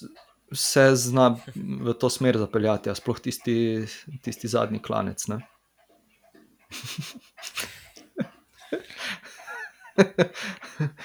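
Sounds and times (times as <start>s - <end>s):
speech: 0.0s - 5.6s, 6.7s - 7.7s, 10.0s - 11.0s
female dog softly panting: 0.0s - 11.0s
person chuckling faintly: 6.7s - 11.0s.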